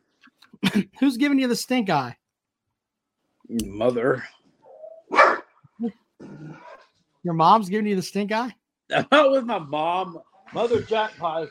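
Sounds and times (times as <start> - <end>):
speech: 0.7 - 2.2, 3.5 - 4.4, 5.8 - 6.6, 7.2 - 11.4
dog on a couch barking: 5.1 - 5.6.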